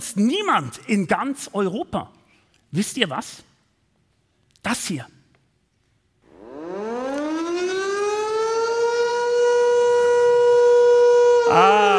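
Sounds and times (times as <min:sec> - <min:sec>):
speech: 0:00.1 - 0:03.5, 0:04.6 - 0:05.2, 0:11.5 - 0:11.9
civil defense siren winding up into a wail during a test: 0:06.3 - 0:11.9.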